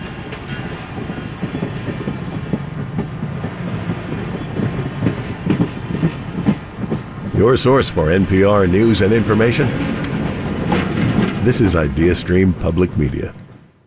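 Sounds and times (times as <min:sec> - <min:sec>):
scenic train wheel squeal: 0:00.0 - 0:02.8, 0:03.4 - 0:07.2
scenic train cars clattering over rails in the Cuyahoga Valley: 0:00.0 - 0:13.8
speech: 0:07.4 - 0:10.0, 0:11.4 - 0:13.4.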